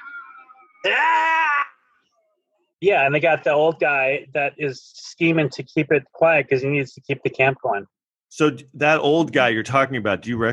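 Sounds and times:
speech: 0.8 - 1.3, 2.8 - 10.5
man screaming in agony: 0.8 - 1.8.

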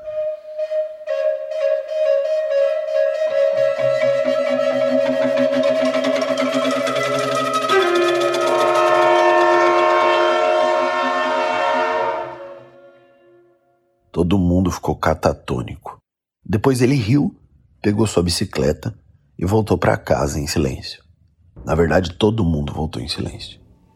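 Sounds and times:
freight train horn blaring a long sustained chord: 0.0 - 13.8
heavy rumble of a passing freight train: 3.7 - 12.7
speech: 14.3 - 15.9, 16.5 - 21.0, 21.6 - 23.6.

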